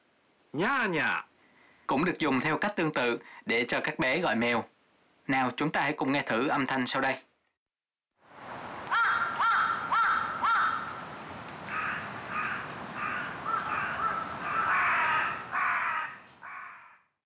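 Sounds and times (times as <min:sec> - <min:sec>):
speech: 0:00.5 - 0:01.3, 0:01.9 - 0:07.3
crows cawing: 0:08.9 - 0:17.1.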